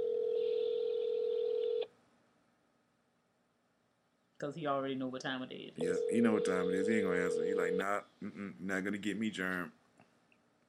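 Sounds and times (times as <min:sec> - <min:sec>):
steady electronic telephone tone: 0:00.0 - 0:01.9, 0:05.8 - 0:07.9
faint hiss: 0:00.0 - 0:10.6
speech: 0:04.4 - 0:09.8.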